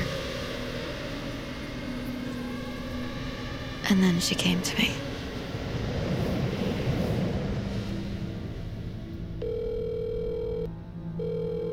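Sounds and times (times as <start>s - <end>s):
low rumbling noise: 0.0s - 11.7s
speech: 3.9s - 5.1s
electronic telephone ring: 9.4s - 11.7s
voicemail greeting: 9.4s - 11.7s.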